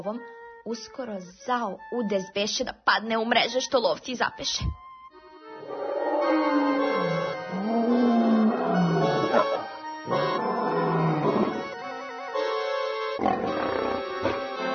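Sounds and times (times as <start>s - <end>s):
speech: 0.0s - 4.8s
lion roaring: 5.6s - 11.8s, 13.2s - 14.6s.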